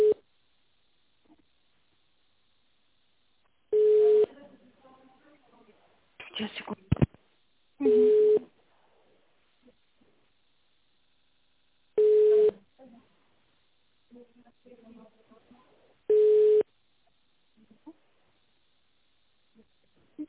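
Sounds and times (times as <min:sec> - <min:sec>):
faint sounds: 0:00.0 - 0:11.2, 0:11.9 - 0:20.2
telephone busy signal beeps during a phone call: 0:03.8 - 0:04.3, 0:12.0 - 0:12.6, 0:16.1 - 0:16.6
speech: 0:06.4 - 0:06.8.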